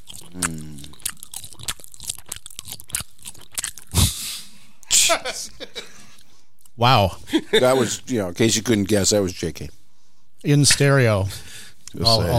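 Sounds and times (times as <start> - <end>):
chewing dried landjaeger sausage: 0.0 - 4.0
speech: 6.8 - 9.8, 10.4 - 12.3.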